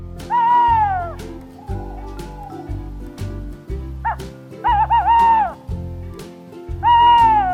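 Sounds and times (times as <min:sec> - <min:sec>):
tawny owl hooting: 0:00.3 - 0:03.0, 0:04.0 - 0:05.7, 0:06.8 - 0:07.5.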